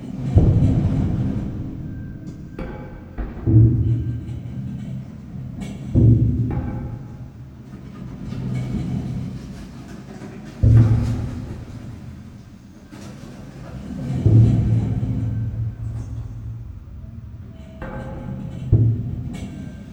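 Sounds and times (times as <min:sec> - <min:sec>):
idle shipwreck ambience: 0:00.0 - 0:19.9.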